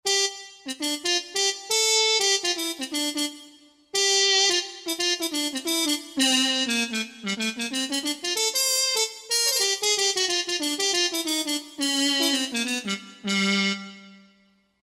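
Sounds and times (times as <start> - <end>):
Harmon mute trumpet synthesizer patch: 0.0 - 14.5.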